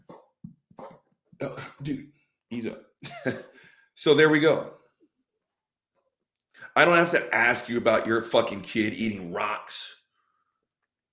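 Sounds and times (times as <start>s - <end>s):
person coughing: 0.0s - 2.0s, 3.0s - 3.6s
speech: 1.4s - 3.4s, 4.0s - 4.8s, 6.8s - 10.0s.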